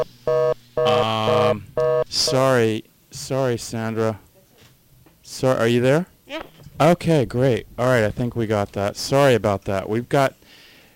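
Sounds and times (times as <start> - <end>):
loud electronic telephone tone on the line: 0.0 - 2.4
speech: 0.8 - 4.3, 5.3 - 10.6.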